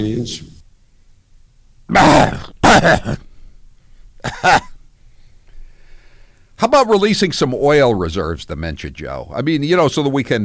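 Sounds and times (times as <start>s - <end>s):
speech: 0.0s - 0.6s, 1.9s - 3.2s, 4.2s - 4.7s, 6.6s - 10.4s
harsh double coughs: 2.6s - 3.4s, 4.2s - 4.8s.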